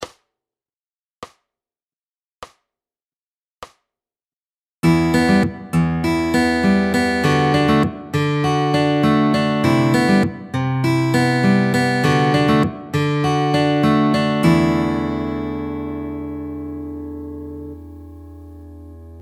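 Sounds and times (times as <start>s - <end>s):
fingerpicking pattern on all chords: 4.8s - 19.2s.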